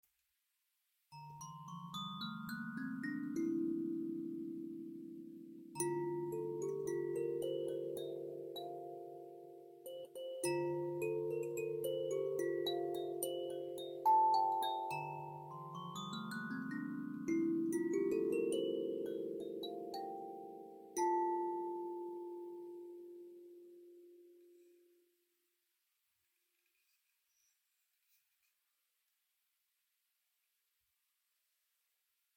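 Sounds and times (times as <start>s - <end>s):
kalimba in D minor: 1.2s - 23.8s.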